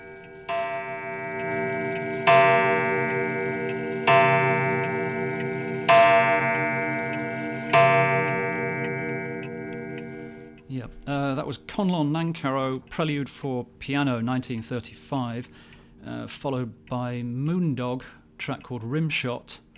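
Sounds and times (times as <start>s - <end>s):
loud resonant clock strikes: 0.0s - 13.4s
clock ticking: 0.0s - 19.7s
speech: 11.8s - 19.6s.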